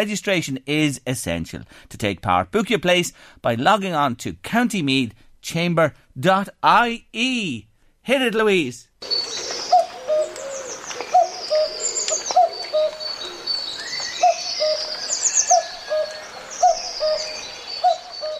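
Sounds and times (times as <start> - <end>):
speech: 0.0 - 9.6
birds chirping and twittering: 9.0 - 18.3
common cuckoo two-note call: 9.0 - 18.3.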